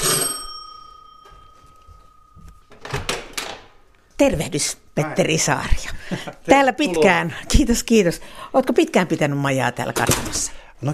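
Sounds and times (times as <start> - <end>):
bright bell-like ring: 0.0 - 2.8
speech: 4.2 - 10.9
laughter: 6.0 - 7.4.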